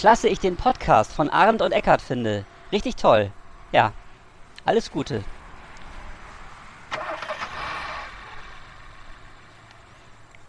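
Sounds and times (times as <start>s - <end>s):
speech: 0.0s - 4.0s, 4.6s - 5.4s
low rumble of motorway traffic: 0.0s - 10.4s
car engine cranking and starting at a motorway rest area in Germany: 6.7s - 10.4s.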